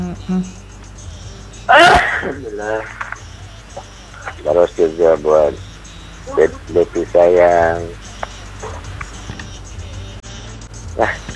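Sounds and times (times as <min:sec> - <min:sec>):
speech: 0:00.2 - 0:00.7, 0:01.7 - 0:03.0, 0:04.4 - 0:05.7, 0:06.3 - 0:08.1, 0:11.0 - 0:11.3
loud sneeze: 0:01.7 - 0:02.4
faint murmuring: 0:02.1 - 0:05.6, 0:06.2 - 0:09.1.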